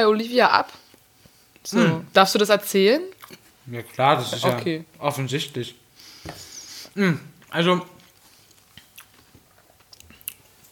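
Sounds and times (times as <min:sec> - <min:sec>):
speech: 0:00.0 - 0:00.8, 0:01.6 - 0:08.0
moist chewing with crunchy bites: 0:03.1 - 0:04.6, 0:07.4 - 0:10.7.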